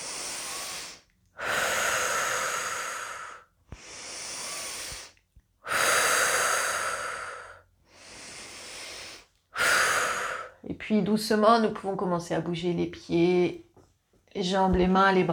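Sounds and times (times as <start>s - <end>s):
slow deep breaths drawn close to the microphone: 0.0s - 10.6s
speech: 10.9s - 13.6s, 14.4s - 15.3s.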